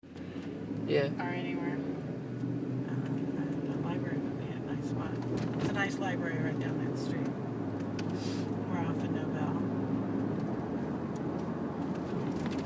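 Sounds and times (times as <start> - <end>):
car ride: 0.0 - 12.6.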